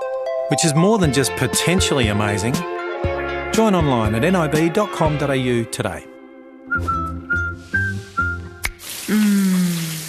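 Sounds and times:
speech: 0.5s - 2.8s, 3.6s - 6.1s
person whistling a short tune of repeated notes: 6.7s - 9.8s
shower water spraying: 8.6s - 10.0s.

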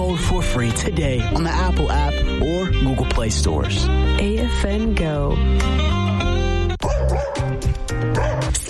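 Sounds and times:
speech: 0.1s - 6.2s
dog barking and yapping: 6.8s - 8.6s.

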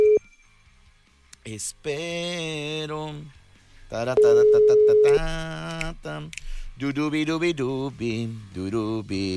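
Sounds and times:
steady electronic call-ringing tone: 0.0s - 0.5s, 4.2s - 5.2s
speech: 1.5s - 9.3s.

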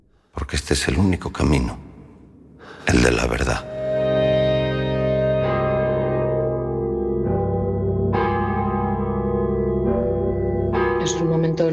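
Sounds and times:
speech: 0.5s - 1.9s, 2.9s - 3.7s, 11.2s - 11.7s
heavy warped death bells tolling slowly: 3.6s - 11.7s.

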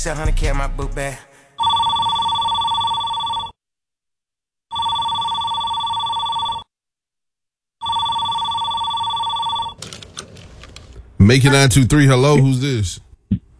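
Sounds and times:
speech: 0.0s - 1.3s, 11.2s - 13.4s
telephone ringing: 1.6s - 3.6s, 4.7s - 6.7s, 7.8s - 12.7s
receiver clatter: 9.8s - 11.2s.

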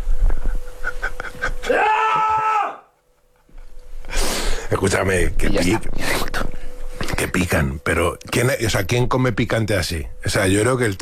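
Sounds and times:
laughter: 0.4s - 2.4s
man screaming in frustration: 1.6s - 2.9s
speech: 4.8s - 6.5s, 7.2s - 11.0s.

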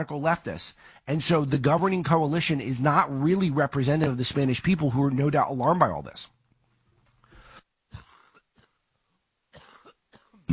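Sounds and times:
speech: 0.0s - 6.4s
person coughing: 7.9s - 8.8s, 9.5s - 10.5s.

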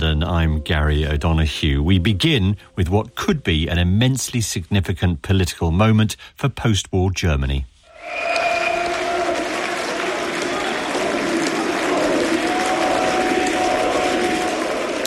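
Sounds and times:
speech: 0.2s - 8.5s
far-right party supporters clapping at an election victory in Saxony-Anhalt: 8.3s - 15.0s.

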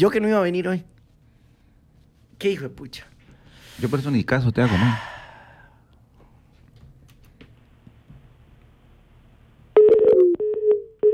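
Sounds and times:
speech: 0.0s - 0.9s, 2.4s - 3.1s, 3.8s - 5.2s
telephone busy signal: 9.8s - 11.1s.

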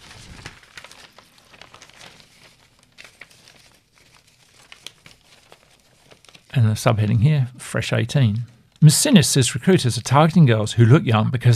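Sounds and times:
paper page turning: 0.0s - 7.1s
speech: 6.6s - 11.5s.

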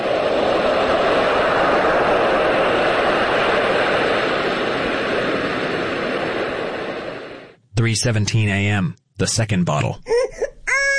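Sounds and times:
soothing white noise for baby sleep: 0.0s - 8.3s
speech: 7.8s - 10.1s.

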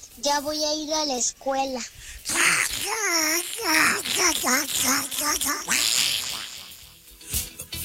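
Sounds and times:
speech: 0.2s - 6.0s
child imitating cartoon duck quacking voice: 2.3s - 7.0s.

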